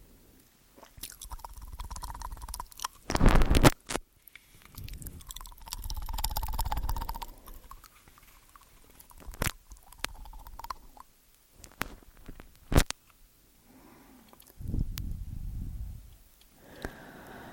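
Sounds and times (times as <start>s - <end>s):
mouth and eating sounds with wet clicks: 0.8s - 3.8s, 4.4s - 11.1s, 14.3s - 15.2s
sharp crunchy bursts: 1.0s - 13.0s.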